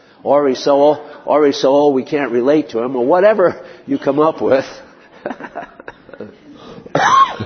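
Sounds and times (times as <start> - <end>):
speech: 0.2 - 7.4
laughter: 4.0 - 7.4
person coughing harshly: 6.8 - 7.4
person clearing throat: 6.9 - 7.4.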